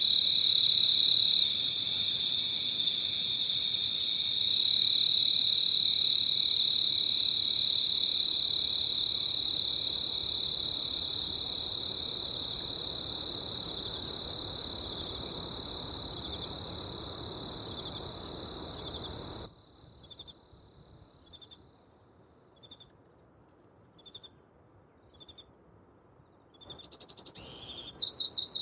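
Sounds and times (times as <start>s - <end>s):
cricket trilling at night: 0.0s - 21.8s
bird singing at dawn: 26.5s - 28.6s.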